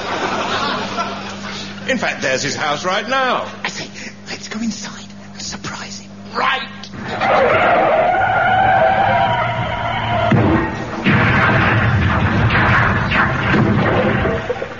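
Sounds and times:
laughter: 0.0s - 1.8s
speech: 1.9s - 3.7s, 4.4s - 4.9s, 6.3s - 6.6s
car skidding with a sustained tire screech: 7.1s - 10.8s
car crashing into a house: 7.2s - 14.7s
rumbling clattering debris: 10.1s - 14.7s.

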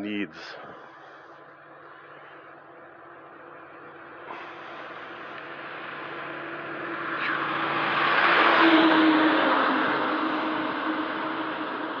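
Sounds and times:
speech: 0.0s - 0.7s
large water truck passing: 2.7s - 11.9s.

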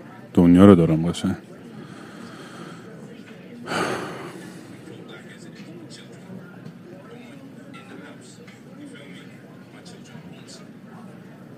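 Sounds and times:
steady low murmur: 0.0s - 11.5s
speech: 0.3s - 1.5s
person gasping after a shot of bourbon: 3.7s - 4.8s.

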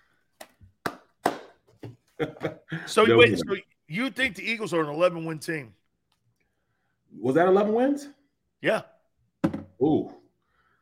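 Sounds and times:
one person clapping: 0.4s - 1.6s
speech: 2.2s - 5.8s, 7.1s - 8.9s, 9.8s - 10.2s.

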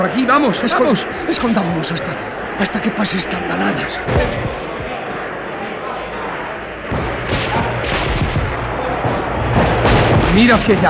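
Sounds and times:
speech: 0.0s - 4.7s, 10.4s - 10.8s
gunfire from people shooting in a street fight: 6.9s - 10.8s.

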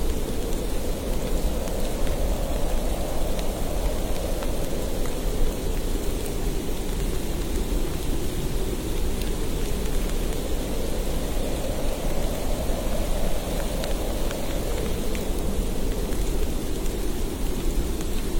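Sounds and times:
snowstorm wind rushing: 0.0s - 18.3s.

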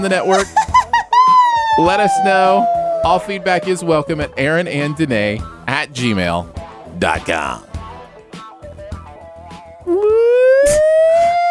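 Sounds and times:
speech: 0.0s - 0.7s, 1.8s - 7.7s
loud siren-like wail climbing in pitch: 1.3s - 4.9s, 9.9s - 11.4s.

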